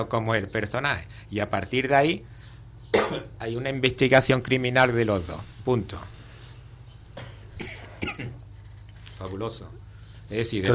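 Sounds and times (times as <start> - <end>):
speech: 0.0 - 2.3, 2.9 - 6.2, 9.2 - 10.7
low hum: 0.0 - 10.7
person coughing: 2.9 - 3.3, 7.2 - 8.4
person clearing throat: 2.9 - 3.4, 7.2 - 8.4.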